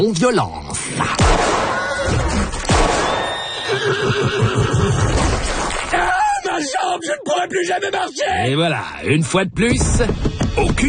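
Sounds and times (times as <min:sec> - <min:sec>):
speech: 0:00.0 - 0:02.2, 0:03.7 - 0:05.4, 0:06.6 - 0:10.8
single sharp gunshot fired at pursuers' horses: 0:01.2 - 0:03.5
horses whinnying loudly and shrilly: 0:01.8 - 0:05.7.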